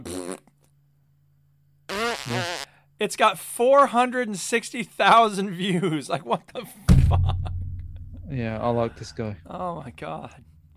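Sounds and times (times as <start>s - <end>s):
fart noises played from a video: 0.0s - 0.6s, 1.9s - 2.7s
speech: 2.3s - 7.5s, 8.3s - 10.7s.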